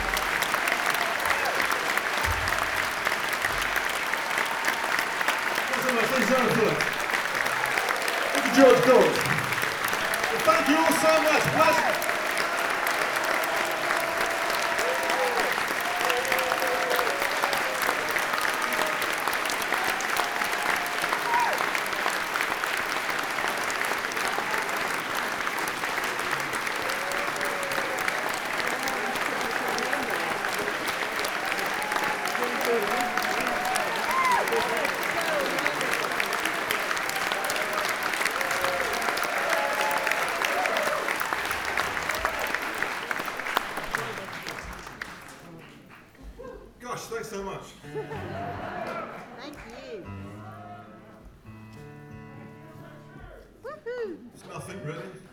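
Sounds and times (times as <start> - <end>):
applause before encore: 0.0 - 46.8, 48.2 - 50.1
laughter: 28.6 - 30.8, 31.8 - 36.6, 47.8 - 50.0.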